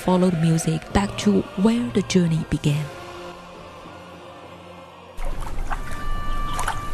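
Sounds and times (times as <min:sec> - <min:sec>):
speech: 0:00.0 - 0:03.0
calm river water flowing: 0:03.0 - 0:06.9
gentle splashing ripples of river water: 0:05.2 - 0:06.9.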